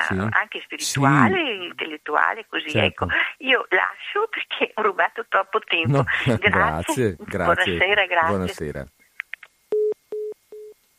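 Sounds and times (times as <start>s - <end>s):
speech: 0.1s - 9.0s
laughter: 5.9s - 8.6s
telephone busy tone low beeps: 9.8s - 10.8s.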